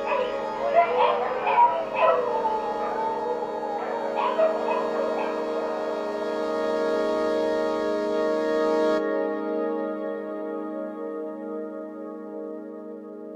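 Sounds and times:
dogs yipping, barking and whimpering: 0:00.0 - 0:06.3
steady droning background: 0:00.0 - 0:12.8.

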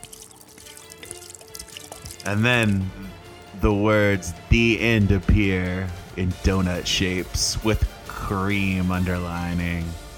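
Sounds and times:
gasoline being poured out: 0:00.0 - 0:03.5
speech: 0:02.2 - 0:03.0, 0:03.6 - 0:10.0.

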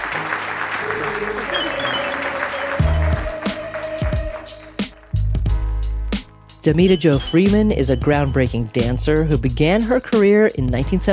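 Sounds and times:
crowd applauding: 0:00.0 - 0:05.2
steady musical tones: 0:00.0 - 0:10.0
speech: 0:06.6 - 0:11.1.

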